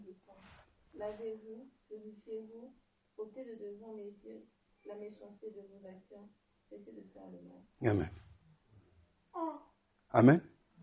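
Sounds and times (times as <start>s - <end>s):
speech: 1.0s - 8.2s, 9.4s - 10.5s
baby babbling: 9.4s - 9.7s.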